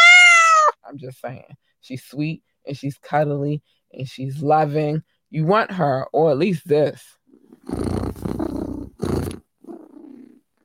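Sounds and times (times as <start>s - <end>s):
speech: 1.0s - 8.0s
cat purring loud: 7.3s - 10.6s.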